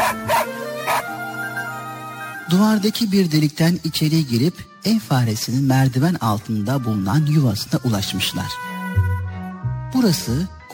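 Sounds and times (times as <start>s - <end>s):
dog barking: 0.0s - 1.2s
speech: 2.5s - 8.7s, 9.9s - 10.6s.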